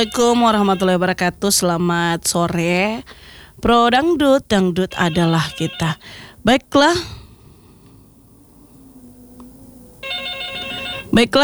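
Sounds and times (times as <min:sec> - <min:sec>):
telephone ringing with a bright electronic tone: 0:00.0 - 0:03.2, 0:04.0 - 0:06.3, 0:09.9 - 0:11.4
speech: 0:00.0 - 0:07.2, 0:11.1 - 0:11.4.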